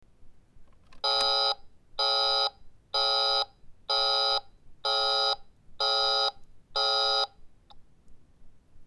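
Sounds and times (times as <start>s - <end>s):
toy phone line busy signal: 1.0s - 7.3s.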